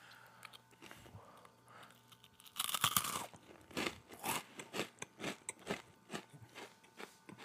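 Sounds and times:
crunching hard sturdy cheese crisps: 1.9s - 7.4s.

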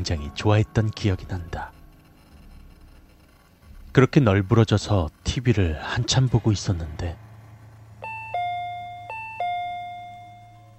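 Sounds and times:
speech: 0.0s - 1.8s, 4.0s - 7.2s
low steady hum: 0.0s - 10.7s
two-tone ding-dong doorbell chime: 8.0s - 10.7s.

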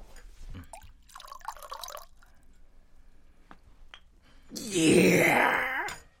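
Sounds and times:
tequila poured into a shot glass: 0.7s - 2.4s
speech: 4.7s - 5.6s.

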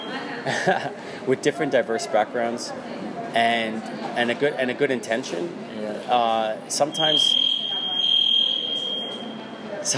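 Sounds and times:
laughter: 0.0s - 1.2s
faint noise: 0.0s - 9.9s
speech: 0.4s - 7.4s
high-pitched electronic alarm tone: 6.8s - 9.8s.

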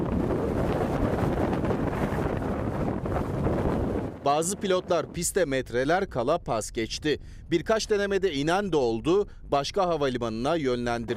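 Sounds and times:
storm winds exceeding 80 km per hour buffeting the microphone in England: 0.0s - 11.1s
speech: 4.2s - 11.1s.

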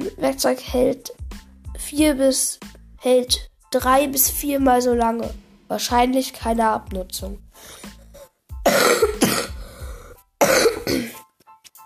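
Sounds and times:
speech: 0.3s - 8.0s
person coughing: 8.2s - 11.2s
throat clearing: 8.7s - 9.8s, 10.4s - 11.2s.

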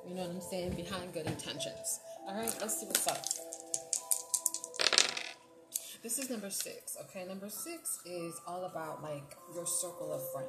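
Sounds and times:
speech: 0.2s - 3.6s, 6.0s - 10.4s
dice rattling: 2.5s - 5.4s.

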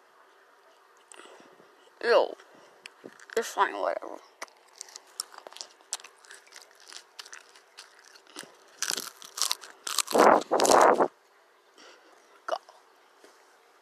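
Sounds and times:
speech: 2.0s - 2.4s, 3.4s - 4.3s
crunchy lettuce being chewed: 2.9s - 11.1s.

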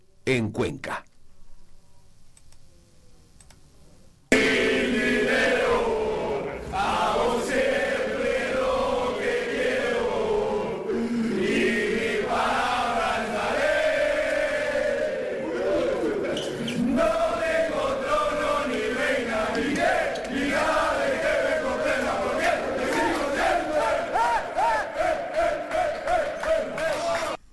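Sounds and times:
speech: 0.2s - 1.0s
handball team chanting a celebration chant: 4.3s - 27.4s
rhythmic clapping or stomping: 17.8s - 27.4s.

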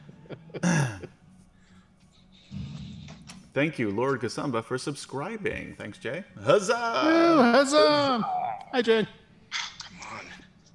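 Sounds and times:
speech: 0.6s - 0.9s, 3.6s - 9.2s
person coughing: 0.6s - 1.1s.

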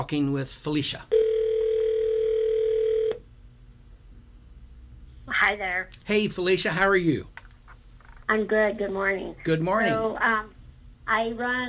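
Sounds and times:
speech: 0.0s - 1.2s, 5.3s - 7.4s, 8.3s - 11.6s
telephone dial tone while placing a call: 1.1s - 3.2s.

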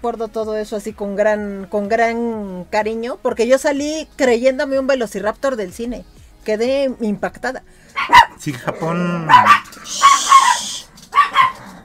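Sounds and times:
speech: 0.0s - 10.1s
dogs barking in sharp yaps: 7.9s - 8.4s, 9.2s - 11.8s.

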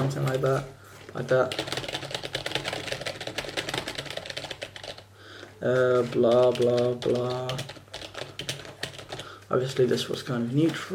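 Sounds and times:
speech: 0.0s - 1.8s, 5.6s - 7.8s, 9.5s - 10.9s
rapid steady clicking of keys on a computer keyboard: 1.4s - 5.1s, 5.8s - 9.4s.

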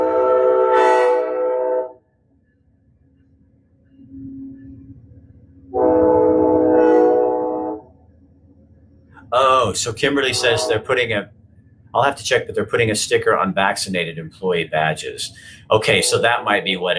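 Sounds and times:
train horn blasts: 0.0s - 2.0s, 5.7s - 8.0s, 10.0s - 11.2s, 15.7s - 16.6s
rumble of the train rolling past: 3.9s - 16.9s
speech: 9.7s - 16.9s.

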